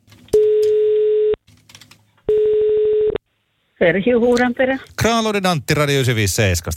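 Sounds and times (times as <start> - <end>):
telephone ringback tone while a call connects: 0.4 - 1.4, 2.3 - 3.2
speech: 3.8 - 6.7.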